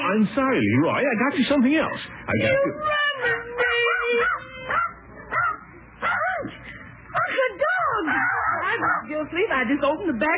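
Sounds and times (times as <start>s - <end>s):
speech: 0.1s - 3.4s, 9.4s - 10.3s
dog howling and whimpering: 2.4s - 6.6s, 7.8s - 9.1s.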